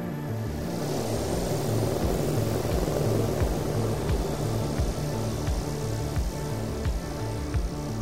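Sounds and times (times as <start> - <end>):
presidential helicopter engine drone and rotor chop landing in Washington: 0.4 - 8.0.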